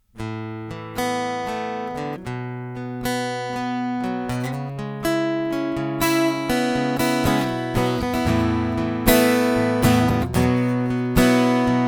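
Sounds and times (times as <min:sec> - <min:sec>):
guitar: 0:00.0 - 0:11.8.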